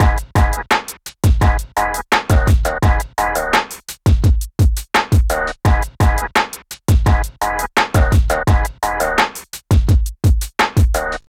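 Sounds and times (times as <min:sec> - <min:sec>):
hip hop drums: 0:00.0 - 0:11.2.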